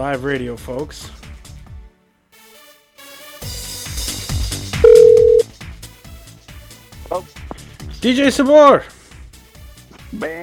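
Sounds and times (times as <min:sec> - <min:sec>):
speech: 0:00.0 - 0:01.2, 0:07.1 - 0:09.0, 0:10.1 - 0:10.4
loud busy music: 0:00.0 - 0:10.4
electronic phone ring tone on the line during a live radio broadcast: 0:04.8 - 0:05.4.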